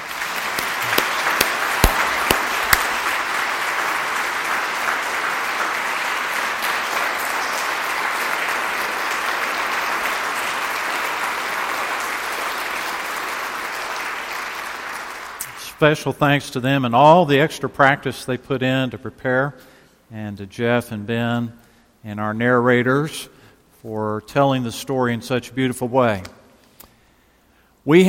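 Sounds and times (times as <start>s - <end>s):
audience applauding a choir: 0.0s - 15.6s
speech: 15.8s - 26.4s, 27.9s - 28.0s.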